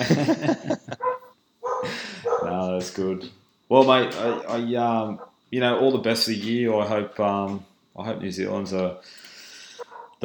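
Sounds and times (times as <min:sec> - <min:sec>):
speech: 0:00.0 - 0:00.8, 0:02.8 - 0:09.2
laughter: 0:00.0 - 0:01.2
dog barking: 0:01.0 - 0:02.6, 0:04.2 - 0:06.0, 0:09.8 - 0:10.2.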